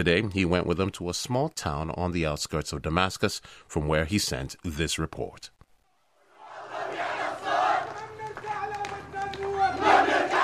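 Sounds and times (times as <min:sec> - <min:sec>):
speech: 0:00.0 - 0:05.6
large crowd of protesters shouting and chanting in the street: 0:06.3 - 0:10.4.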